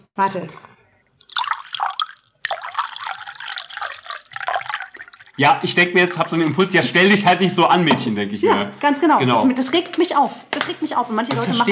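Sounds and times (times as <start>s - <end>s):
speech: 0.2s - 0.7s, 5.4s - 11.7s
water poured slowly into a glass: 1.1s - 7.0s.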